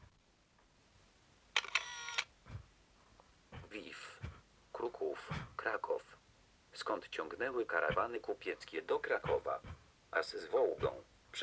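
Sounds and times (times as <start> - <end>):
camera taking a photo with a mechanical whirring burst: 1.6 - 2.3
speech: 5.0 - 6.1, 6.8 - 11.4.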